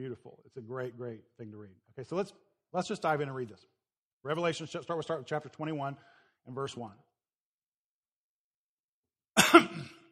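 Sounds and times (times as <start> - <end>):
speech: 0.0 - 7.1
loud harsh cough into microphone: 9.3 - 10.1.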